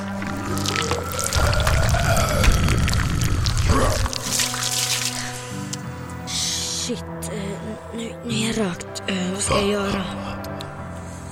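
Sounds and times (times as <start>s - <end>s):
water gushing and dripping: 0.0s - 5.8s
wet squelching squeeze: 0.0s - 5.8s
steady low droning background: 0.0s - 11.3s
speech: 8.0s - 10.3s.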